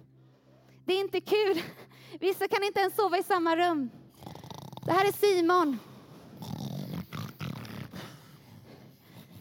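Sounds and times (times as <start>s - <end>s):
speech: 0.9s - 4.0s, 4.8s - 5.9s
person snoring: 4.1s - 5.1s, 6.2s - 9.3s.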